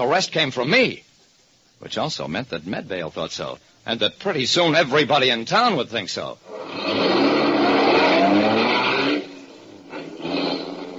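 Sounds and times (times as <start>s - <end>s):
speech: 0.0s - 1.1s, 1.8s - 7.1s
car engine accelerating and driving off: 6.4s - 10.9s.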